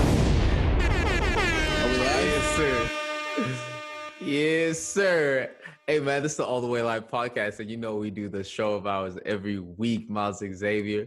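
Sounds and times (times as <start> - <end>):
booming explosion sound effects from a soundboard: 0.0 - 2.9
speech: 4.3 - 11.0.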